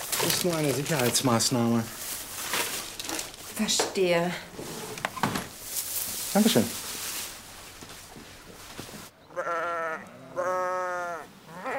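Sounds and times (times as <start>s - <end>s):
rustling and shuffling: 0.0s - 9.1s
speech: 0.2s - 2.1s, 3.6s - 4.8s, 6.3s - 6.8s
sheep bleating: 9.3s - 11.7s.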